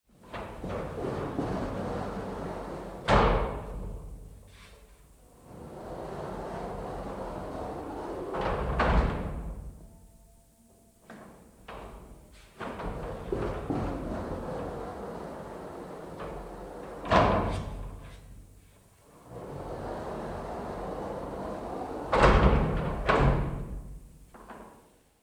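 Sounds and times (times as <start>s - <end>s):
shower cubicle glass doors sliding open and closed: 0.3s - 3.7s, 5.4s - 9.6s, 11.9s - 18.1s, 19.2s - 23.7s.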